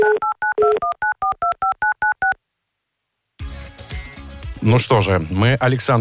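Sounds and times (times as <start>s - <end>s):
touch-tone beeps of a phone number being dialed: 0.0s - 2.4s
music: 3.4s - 5.9s
speech: 4.6s - 5.9s.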